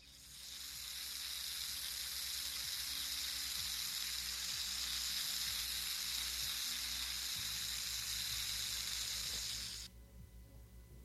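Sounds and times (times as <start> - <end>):
water spraying from leaking seal at water main joint: 0.0 - 9.9.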